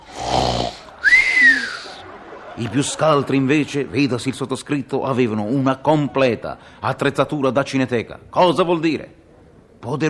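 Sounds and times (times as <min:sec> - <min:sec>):
voice imitating snoring: 0:00.0 - 0:01.0
laughter: 0:00.8 - 0:05.2
speech: 0:02.6 - 0:09.2, 0:09.8 - 0:10.0.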